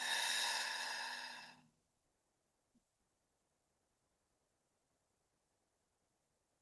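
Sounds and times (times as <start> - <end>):
deep inhale through the nose and exhale through the mouth during a guided exercise: 0.0 - 1.6.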